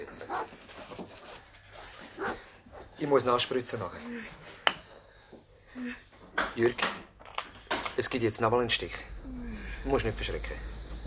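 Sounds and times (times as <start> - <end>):
dog panting: 0.2 - 3.0
dog outside barking, afraid of a helicopter: 0.3 - 0.5, 2.2 - 2.4
speech: 0.3 - 1.0, 3.0 - 4.6, 5.8 - 6.0, 6.6 - 7.1, 8.0 - 9.1, 9.8 - 10.7.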